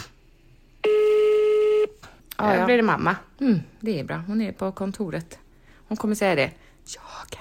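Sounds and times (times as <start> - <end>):
steady electronic phone tone: 0.8 - 2.0
speech: 2.4 - 7.4.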